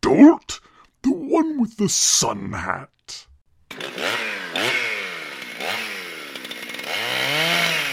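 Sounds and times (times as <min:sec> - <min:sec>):
speech: 0:00.2 - 0:00.6, 0:01.3 - 0:03.3
chainsaw engine revving: 0:03.7 - 0:07.9.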